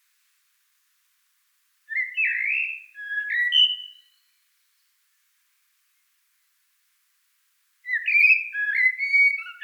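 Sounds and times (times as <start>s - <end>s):
common blackbird singing: 1.9s - 4.2s, 7.9s - 9.6s.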